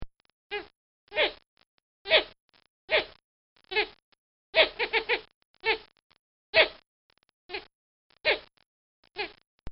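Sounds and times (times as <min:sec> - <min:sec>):
animal chirping: 0:02.1 - 0:05.9, 0:07.5 - 0:08.5, 0:09.1 - 0:09.4.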